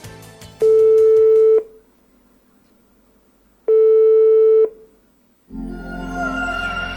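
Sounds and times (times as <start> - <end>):
ringing tone of an outgoing telephone call: 0.6 - 1.8, 3.7 - 4.8.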